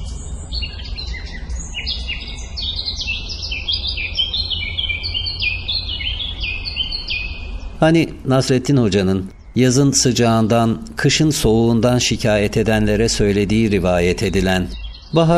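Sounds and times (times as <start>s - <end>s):
several birds chirping and singing in spring: 0.0s - 15.3s
steady low rumble: 0.0s - 15.3s
speech: 7.8s - 15.3s.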